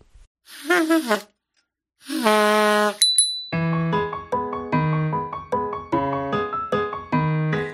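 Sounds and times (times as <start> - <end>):
person singing sustained notes in a French children's song: 0.5 - 1.2
bright crisp bicycle bell ringing: 3.0 - 3.6
bouncy piano accompaniment: 3.5 - 7.7.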